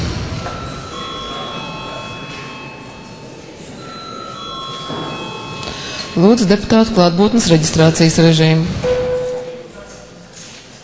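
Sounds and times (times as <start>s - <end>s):
electric bell ringing in parliament chamber: 0.0s - 7.9s
speech: 6.2s - 8.9s.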